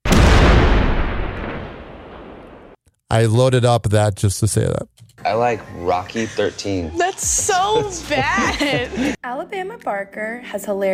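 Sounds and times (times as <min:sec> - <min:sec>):
cannon blast: 0:00.0 - 0:02.8
speech: 0:03.1 - 0:10.9
laughter: 0:05.8 - 0:09.2.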